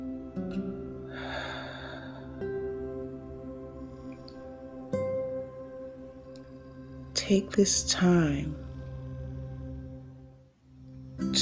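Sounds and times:
faint sustained tones: 0:00.0 - 0:11.4
slow breath drawn in during a guided breathing exercise: 0:01.0 - 0:02.6
speech: 0:07.3 - 0:08.6.

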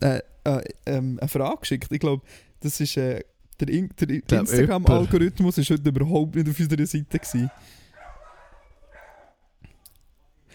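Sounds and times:
speech: 0:00.0 - 0:07.8
dogs barking at a dog daycare: 0:07.2 - 0:09.5.

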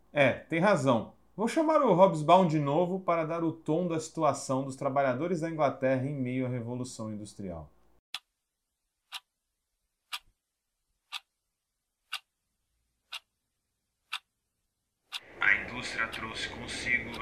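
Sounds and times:
speech: 0:00.2 - 0:07.8
clock ticking: 0:09.1 - 0:09.3, 0:10.1 - 0:10.3, 0:11.1 - 0:11.3, 0:12.1 - 0:12.3, 0:13.1 - 0:13.3, 0:14.1 - 0:14.3, 0:15.1 - 0:17.2.

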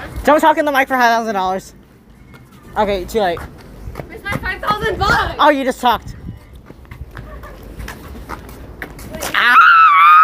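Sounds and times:
speech: 0:00.2 - 0:01.8, 0:02.8 - 0:06.2
person screaming after being pushed: 0:09.3 - 0:10.2.

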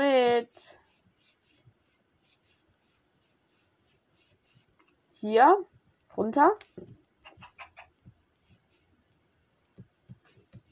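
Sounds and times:
speech: 0:00.0 - 0:00.8, 0:05.2 - 0:07.0
higher chicken calls: 0:07.2 - 0:08.0
chicken clucking: 0:07.3 - 0:08.0.

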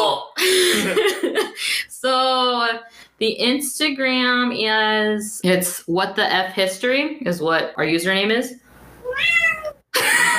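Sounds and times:
speech: 0:00.8 - 0:10.3
cat meowing to be let inside: 0:09.0 - 0:09.8.

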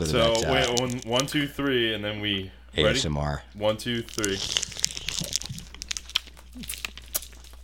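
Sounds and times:
speech: 0:00.0 - 0:05.3
crunching sugary tomato-flavored hard candies: 0:00.1 - 0:01.5, 0:03.9 - 0:07.6
candy wrapper crinkling: 0:00.2 - 0:01.5, 0:03.9 - 0:07.6.

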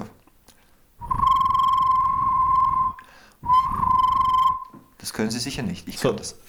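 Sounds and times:
mouth trill imitating a referee whistle: 0:01.0 - 0:04.9
speech: 0:05.1 - 0:06.4.

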